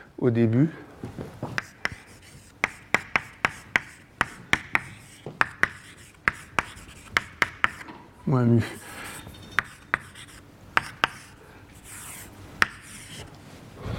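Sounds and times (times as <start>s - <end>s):
speech: 0.2s - 1.2s, 8.3s - 8.8s
tapping strokes of writing out an equation: 1.6s - 7.9s, 9.6s - 13.4s.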